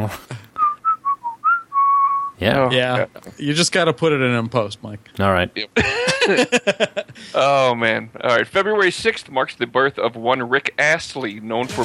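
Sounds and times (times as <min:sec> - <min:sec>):
speech: 0:00.0 - 0:00.4, 0:02.4 - 0:11.8
person whistling a tune: 0:00.6 - 0:02.4
person laughing: 0:05.8 - 0:07.4.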